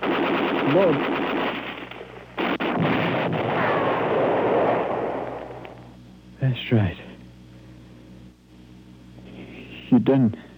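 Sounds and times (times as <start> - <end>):
grenade explosion in combat: 0.0 - 5.9
speech: 0.7 - 1.3, 6.5 - 7.1, 9.9 - 10.5.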